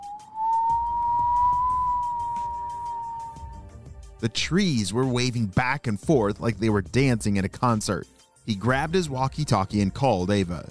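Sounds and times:
wind howling: 0.0 - 3.9
speech: 4.2 - 10.6.

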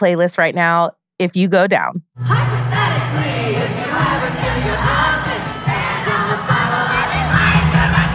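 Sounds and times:
speech: 0.0 - 4.8
large concert crowd screaming and yelling during a song: 2.3 - 8.1.

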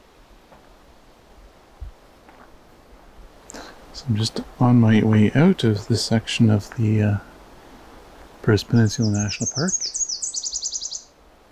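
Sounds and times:
speech: 4.0 - 7.3, 8.4 - 10.0
Nashville warbler singing in Bruce Peninsula National Park: 8.6 - 11.2.

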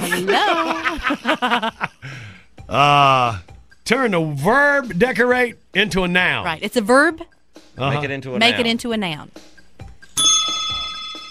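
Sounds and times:
laughter: 0.0 - 2.0
speech: 0.1 - 9.5
cell phone ringing with a bright bell-like chime: 10.2 - 11.2.

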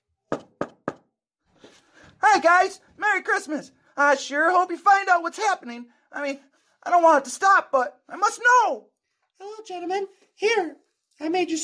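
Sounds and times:
firm knocks on a door: 0.3 - 1.1
speech: 2.2 - 11.6.

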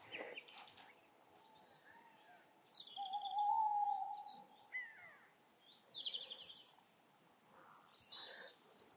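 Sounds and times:
tawny owl long wavering hoot: 3.0 - 5.3.

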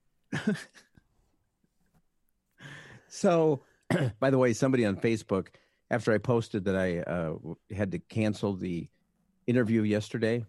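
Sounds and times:
raspy COVID cough: 0.3 - 0.9, 3.9 - 4.2
speech: 0.4 - 0.9, 3.1 - 10.4.

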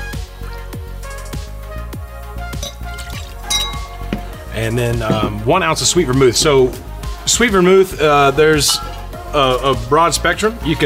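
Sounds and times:
music: 0.0 - 10.8
faint glassy clinks: 2.5 - 5.3, 8.6 - 9.2
rye whiskey glugging from a bottle into a mixing glass: 2.6 - 4.4
speech: 4.6 - 10.8.

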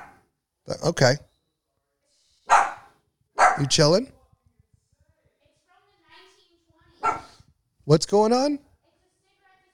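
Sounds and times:
dog barking: 0.0 - 0.2, 2.5 - 3.8, 7.0 - 7.4
speech: 0.7 - 1.3, 3.6 - 4.2, 7.9 - 8.6.

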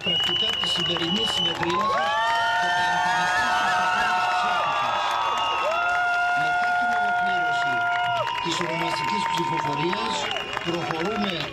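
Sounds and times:
whistles or horn-like tones: 0.0 - 1.9
large outdoor crowd cheering and shouting in city streets: 0.0 - 11.5.

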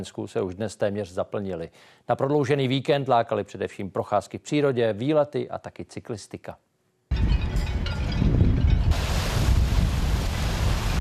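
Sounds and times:
speech: 0.0 - 6.7
strong cold wind roaring on the shore of Lake Lipno in the Czech Republic: 7.1 - 10.9.

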